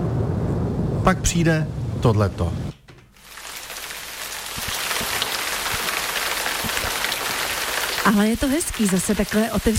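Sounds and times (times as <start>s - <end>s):
speech: 1.0s - 2.6s, 8.0s - 9.7s
steady rain pouring down: 3.2s - 9.7s.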